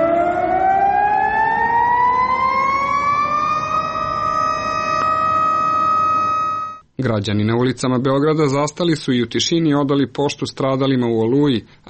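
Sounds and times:
city sirens wailing in Belgrade at noon for a memorial minute of silence: 0.0 - 6.8
speech: 7.0 - 11.8.

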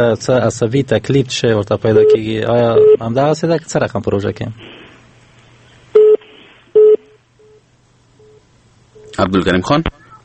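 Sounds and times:
speech: 0.0 - 4.8, 9.2 - 9.9
telephone busy tone beeps after a dropped call: 2.8 - 3.0, 6.0 - 6.2, 6.8 - 7.6.

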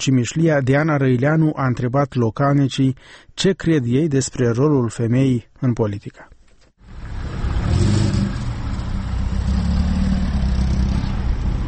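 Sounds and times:
speech: 0.0 - 6.3
bus station engine idling and revving: 6.8 - 11.6
traffic noise: 6.8 - 11.6.

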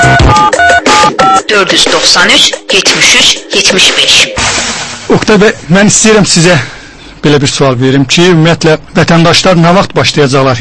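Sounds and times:
touch-tone dialing beeps on a telephone call-in line: 0.0 - 2.0
speech: 1.5 - 10.5.

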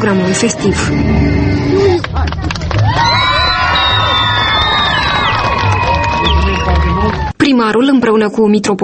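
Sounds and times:
speech: 0.0 - 3.2, 7.4 - 8.8
dense crowd shouting and calling at a festival: 2.7 - 7.3
high excited cries: 2.8 - 7.3.

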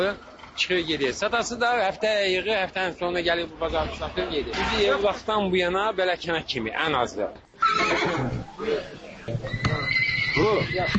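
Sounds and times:
speech: 0.0 - 9.7, 10.4 - 10.9
horse whinnying at a village livestock bazaar: 7.6 - 10.9.

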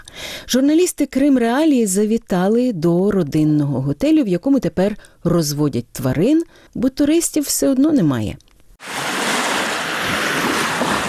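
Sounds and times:
speech: 0.4 - 9.2
sea waves washing onto a pebble beach in a resort town on Crimea's western coast: 8.8 - 11.0
wind noise: 8.8 - 11.0.

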